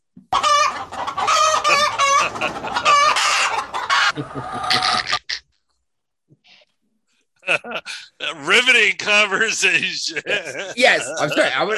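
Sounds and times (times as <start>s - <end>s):
chicken clucking: 0.3s - 5.4s
laughter: 1.4s - 5.3s, 7.4s - 11.7s
speech: 2.4s - 3.1s, 4.2s - 5.2s, 7.8s - 11.7s.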